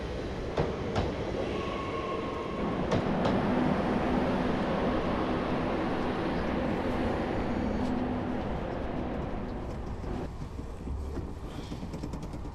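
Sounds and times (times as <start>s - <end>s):
train rumbling on rails entering station: 0.0s - 12.5s
train wheels clacking over track joints: 9.0s - 12.5s.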